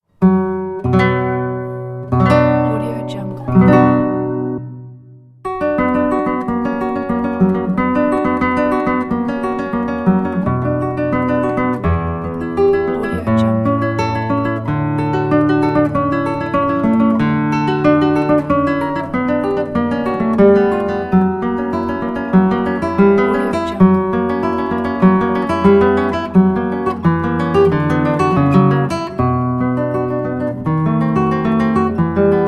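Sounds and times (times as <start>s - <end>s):
guitar prelude: 0.0s - 32.4s.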